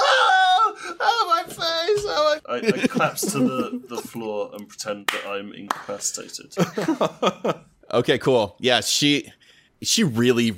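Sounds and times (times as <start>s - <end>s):
loud high-pitched acted human scream of terror: 0.0s - 1.5s
laughter: 0.0s - 4.3s, 6.6s - 7.7s
speech: 2.4s - 10.5s.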